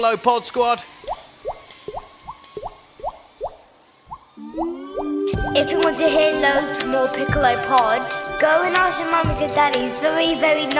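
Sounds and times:
speech: 0.0 - 1.2, 5.6 - 10.7
water dripping from a leak in a workshop: 1.0 - 5.6.

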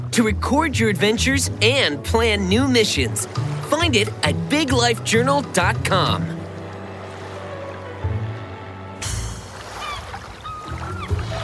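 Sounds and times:
water rushing and sloshing alongside a boat: 0.0 - 11.4
speech: 0.2 - 6.4
hop-on hop-off tour boat engine droning: 1.6 - 11.4
faint bird calls chirping: 9.7 - 11.4.

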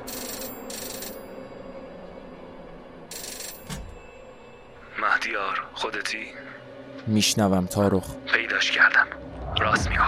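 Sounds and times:
room telephone ringing: 0.0 - 1.4, 3.1 - 4.1
speech: 5.3 - 10.0.

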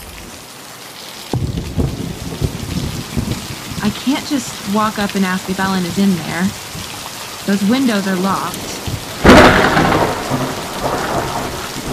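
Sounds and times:
steady heavy rain: 0.0 - 11.9
loud crack of thunder rolling into a low rumble: 1.3 - 7.0, 8.5 - 11.9
speech: 3.8 - 6.7, 7.4 - 8.8.

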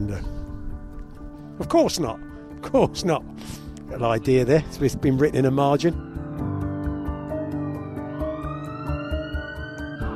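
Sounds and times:
speech: 0.0 - 0.4, 1.6 - 6.1
police siren wailing on a street: 5.7 - 10.1.

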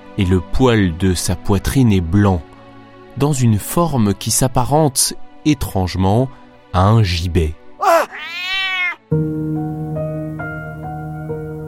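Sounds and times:
speech: 0.2 - 2.5, 3.2 - 8.4, 9.1 - 9.7
cat meowing: 7.8 - 9.0.

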